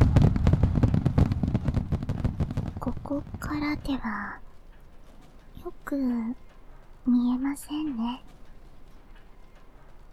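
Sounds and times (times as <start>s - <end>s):
low rumbling boom of fireworks: 0.0s - 4.0s
fireworks crackling and popping: 0.0s - 4.4s
speech: 3.1s - 4.4s, 5.6s - 8.4s.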